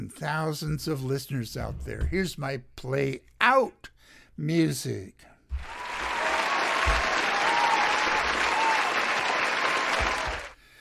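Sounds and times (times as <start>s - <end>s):
speech: 0.1s - 5.8s
crowd applause: 5.6s - 10.6s.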